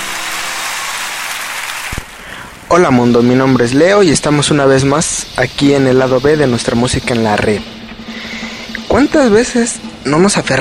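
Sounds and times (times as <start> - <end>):
crowd applauding for the Virgin Mary: 0.0 - 2.7
speech: 2.7 - 7.8, 9.0 - 10.5.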